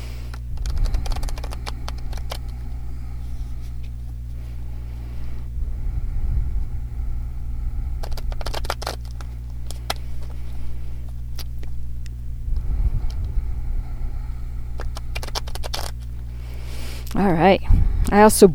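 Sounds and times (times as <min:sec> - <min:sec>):
tarot cards being shuffled: 0:00.0 - 0:04.4, 0:08.0 - 0:11.8, 0:14.7 - 0:17.0
steady low hum: 0:00.0 - 0:18.5
speech: 0:17.4 - 0:18.5.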